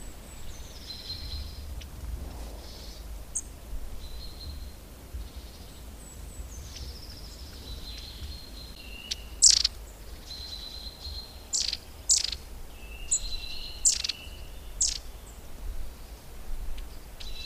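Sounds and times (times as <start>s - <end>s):
faint low rumbling background noise: 0.0s - 17.4s
Long-tailed tit calling with high sharp notes and thin whistles: 2.6s - 15.3s.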